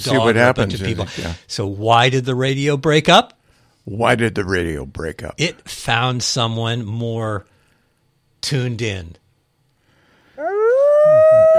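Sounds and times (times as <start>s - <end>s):
speech: 0.0s - 7.5s, 8.4s - 9.2s
dogs howling: 10.4s - 11.5s.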